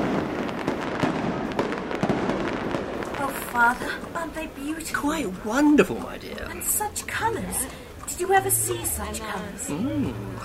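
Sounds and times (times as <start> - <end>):
fireworks bangs in Sydney Gardens in Bath: 0.0 - 5.3
fireworks crackling and popping in Sydney Gardens in Bath: 0.0 - 9.0
fireworks rumble in Sydney Gardens in Bath: 0.0 - 10.4
speech: 3.6 - 10.4.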